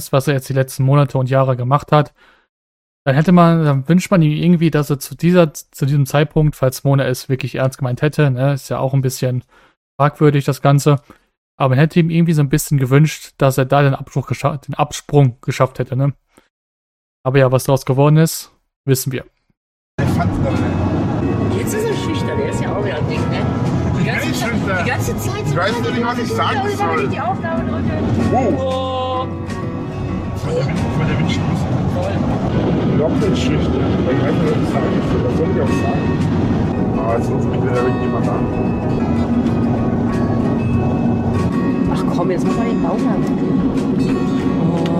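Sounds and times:
speech: 0.0s - 2.4s, 3.0s - 16.2s, 17.2s - 19.4s, 20.0s - 29.6s, 30.4s - 39.8s, 42.1s - 44.9s
low road noise: 20.0s - 44.9s
vehicle interior rumble: 20.0s - 44.9s.

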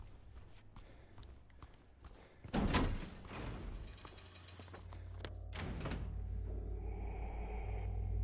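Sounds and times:
heavy door unlatched and pushed open from the other side: 2.5s - 3.6s
steady low rumble and hum: 3.8s - 8.2s.

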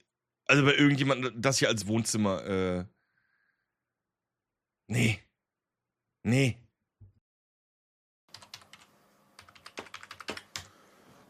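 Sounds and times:
speech: 0.5s - 3.0s, 4.9s - 5.2s, 6.2s - 6.6s
brisk typing on a computer keyboard: 8.3s - 10.7s.

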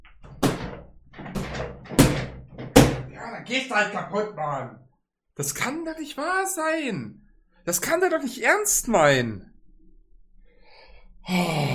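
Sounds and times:
wooden chair knocking: 0.1s - 3.2s
speech: 3.4s - 4.8s, 5.4s - 9.5s, 11.2s - 11.7s.

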